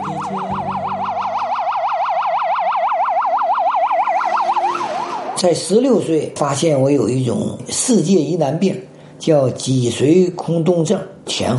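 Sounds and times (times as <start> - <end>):
ambulance siren yelping: 0.0 - 5.8
speech: 5.4 - 11.5.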